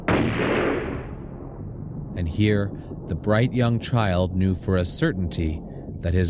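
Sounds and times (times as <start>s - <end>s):
single loud gunshot: 0.0s - 1.8s
speech: 2.2s - 6.2s.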